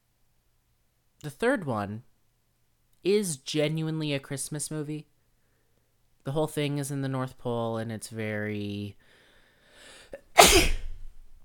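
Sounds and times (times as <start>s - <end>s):
speech: 1.2s - 2.1s, 3.0s - 5.1s, 6.2s - 9.1s, 10.5s - 10.7s
sharp intake of breath before a sneeze: 9.1s - 11.0s
person sneezing: 10.2s - 11.1s.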